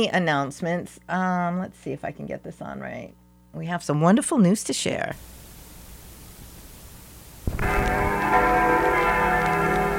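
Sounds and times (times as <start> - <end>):
speech: 0.0 - 5.4
wedding bells ringing: 7.6 - 9.9.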